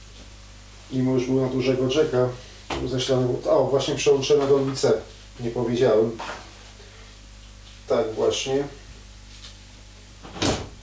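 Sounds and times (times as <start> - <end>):
speech: 0.9 - 6.4, 7.9 - 8.8
door opening and closing: 10.2 - 10.8.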